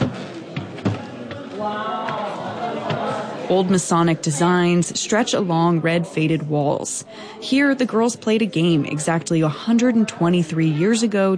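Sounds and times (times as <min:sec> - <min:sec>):
footsteps thudding across a wooden floor: 0:00.0 - 0:02.2
people murmuring indistinctly: 0:00.0 - 0:11.3
speech: 0:01.6 - 0:02.1, 0:03.5 - 0:11.3.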